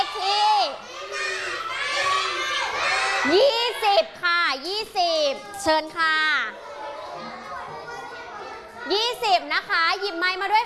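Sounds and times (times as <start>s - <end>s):
children shouting excitedly: 0.0s - 4.1s, 5.2s - 9.3s
speech: 3.2s - 3.6s, 5.6s - 6.6s, 8.9s - 10.6s.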